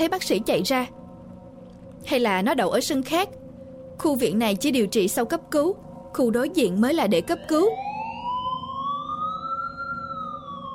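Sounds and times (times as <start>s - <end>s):
speech: 0.0s - 1.0s, 2.0s - 3.4s, 4.0s - 7.9s
ambulance siren wailing near a hospital courtyard: 6.9s - 10.7s.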